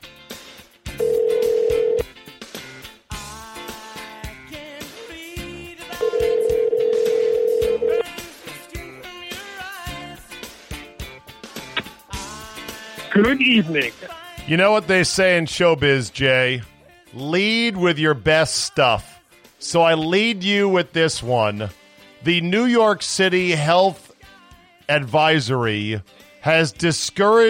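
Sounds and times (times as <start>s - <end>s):
phone call ringback tones over the line: 1.0s - 2.1s, 6.0s - 8.1s
speech: 13.2s - 24.0s, 24.9s - 27.4s.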